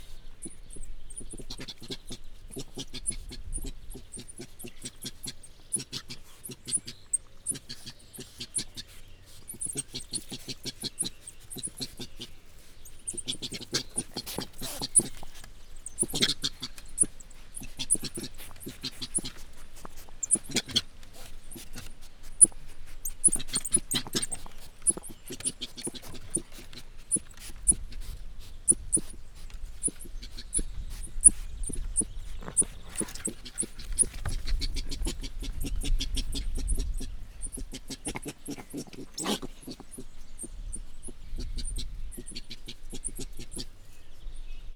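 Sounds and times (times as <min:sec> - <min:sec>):
coati worried call in a zoo: 0:00.0 - 0:44.0.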